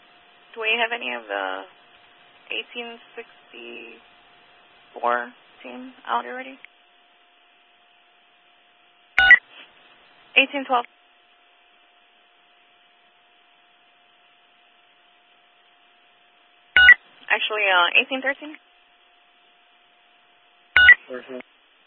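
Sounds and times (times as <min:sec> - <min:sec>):
speech: 0:00.5 - 0:01.8, 0:02.5 - 0:04.1, 0:04.9 - 0:06.7, 0:10.4 - 0:11.0, 0:17.4 - 0:18.7, 0:21.1 - 0:21.5
dispatch radio voice: 0:02.5 - 0:04.0, 0:04.9 - 0:06.6
dispatch radio softer stepped beeps: 0:09.2 - 0:09.4.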